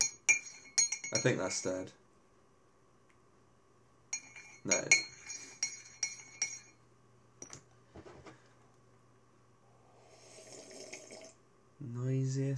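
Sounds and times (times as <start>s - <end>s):
spoon clinking against a glass stirring a drink: 0.0s - 1.7s, 4.2s - 6.8s
speech: 1.1s - 2.0s, 4.6s - 5.1s, 12.0s - 12.5s.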